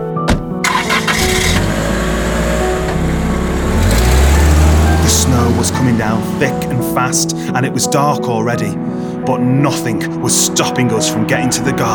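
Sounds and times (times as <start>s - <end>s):
car engine cranking with a sharp click: 0.6s - 6.9s
speech: 5.5s - 11.9s.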